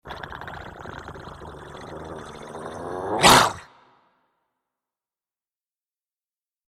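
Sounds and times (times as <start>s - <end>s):
dog growling with low rumbling snarl and harsh outburst: 1.8s - 3.8s.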